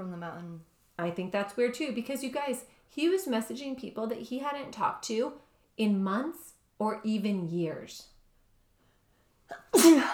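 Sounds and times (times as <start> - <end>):
speech: 0.2 - 8.1, 9.5 - 10.1
wet spitty sneeze: 9.5 - 10.1.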